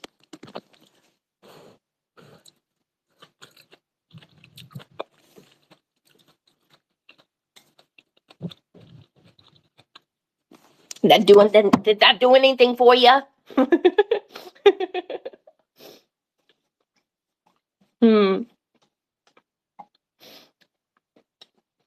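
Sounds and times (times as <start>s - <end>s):
loud chewing of crunchy food: 0.0s - 11.0s, 16.4s - 21.8s
speech: 11.0s - 14.0s.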